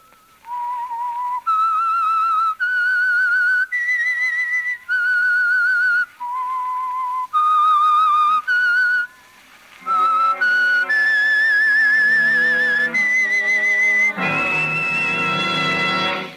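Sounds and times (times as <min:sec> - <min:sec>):
solo whistled melody: 0:00.0 - 0:16.3
orchestral instruments: 0:09.7 - 0:16.3.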